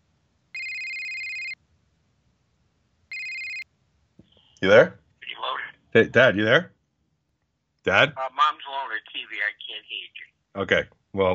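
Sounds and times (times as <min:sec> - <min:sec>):
electronic telephone ringing while calling someone: 0:00.6 - 0:01.6, 0:03.1 - 0:03.6
speech: 0:04.6 - 0:05.0, 0:06.0 - 0:06.7, 0:07.8 - 0:11.3.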